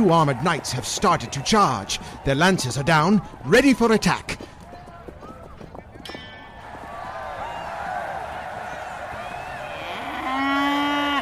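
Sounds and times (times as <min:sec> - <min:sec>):
speech: 0:00.0 - 0:04.5
bull bellowing in an arena at a jousting event: 0:09.8 - 0:11.2.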